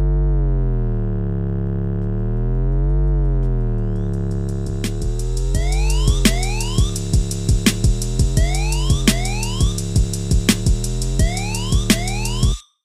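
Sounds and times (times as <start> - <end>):
deep slowly sliding bass line: 0.0 - 12.6
punchy drum pattern: 2.7 - 12.6
quick rising sweeps: 3.8 - 12.6
wavering siren wail: 5.6 - 7.0, 8.4 - 9.8, 11.2 - 12.6.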